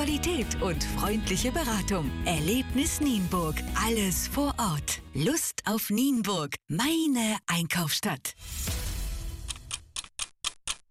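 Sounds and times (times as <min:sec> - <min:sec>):
speech: 0:00.0 - 0:08.8
clock ticking: 0:09.4 - 0:10.8.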